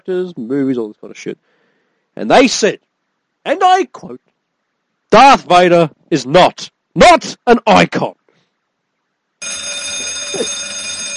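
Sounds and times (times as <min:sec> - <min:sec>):
speech: 0:00.0 - 0:01.6, 0:02.2 - 0:04.3, 0:05.1 - 0:08.2, 0:09.4 - 0:10.7
alarm ringing with a high-pitched steady tone: 0:09.4 - 0:11.1.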